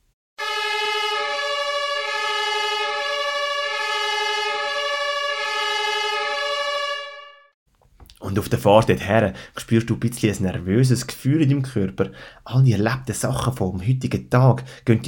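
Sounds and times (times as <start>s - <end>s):
vehicle siren switched on while driving: 0.4s - 7.6s
speech: 8.4s - 15.0s.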